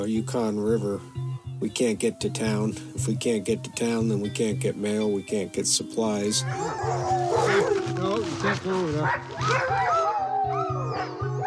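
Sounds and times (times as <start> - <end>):
speech: 0.0 - 10.0
sled dogs barking and howling: 6.2 - 11.4.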